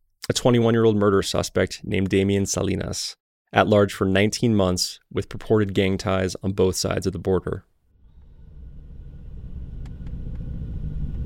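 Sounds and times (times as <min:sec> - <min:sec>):
speech: 0:00.3 - 0:07.7
truck engine rumbling while driving, heard from inside the cab: 0:08.0 - 0:11.2.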